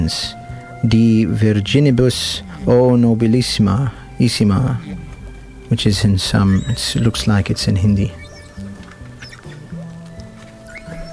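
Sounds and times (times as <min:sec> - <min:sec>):
humpback whale song: 0:00.0 - 0:11.1
speech: 0:00.1 - 0:05.1, 0:05.7 - 0:08.2.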